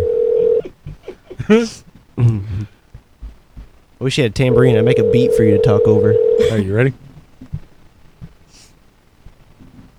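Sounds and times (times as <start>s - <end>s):
steady electronic phone tone of a call being placed: 0.0s - 0.6s, 4.5s - 6.5s
speech: 1.5s - 2.8s, 4.0s - 7.0s.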